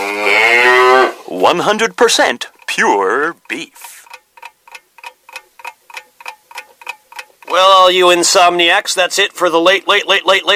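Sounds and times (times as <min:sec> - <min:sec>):
cow mooing: 0:00.0 - 0:01.2
speech: 0:01.5 - 0:03.9, 0:07.5 - 0:10.5.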